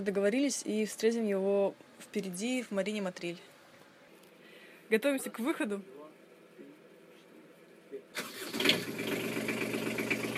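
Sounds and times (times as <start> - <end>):
speech: 0.0 - 3.5, 4.9 - 6.0
boat engine starting and idling: 8.2 - 10.3.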